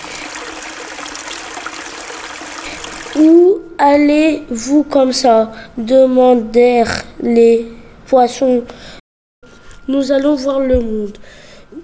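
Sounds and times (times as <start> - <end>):
stream water rushing steadily: 0.0 - 3.2
speech: 3.2 - 9.0, 9.9 - 11.4.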